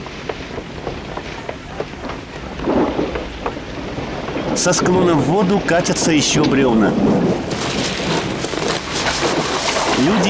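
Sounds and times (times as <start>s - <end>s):
heavy rain pouring at nightfall by a river: 0.0s - 10.2s
speech: 4.6s - 7.8s, 10.0s - 10.2s.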